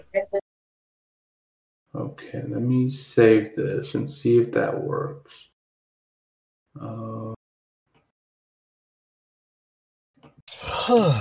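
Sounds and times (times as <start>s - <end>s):
speech: 2.0s - 5.5s, 6.8s - 7.4s, 10.6s - 11.1s
drawn-out yawn with voiced hum and breathy exhale: 10.5s - 11.1s.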